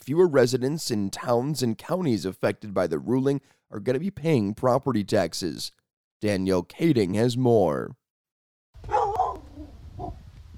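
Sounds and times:
speech: 0.0s - 8.0s
black lab pit bull mix dog barking at the door of a home: 8.9s - 10.1s.

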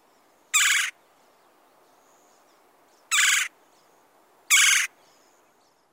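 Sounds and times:
red-bellied woodpecker churring calls: 0.5s - 1.0s, 3.1s - 3.5s, 4.5s - 5.0s.

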